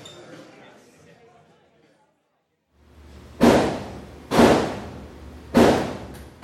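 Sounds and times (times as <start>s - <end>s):
muffled gunshots heard through walls from an indoor shooting range: 3.4s - 6.4s.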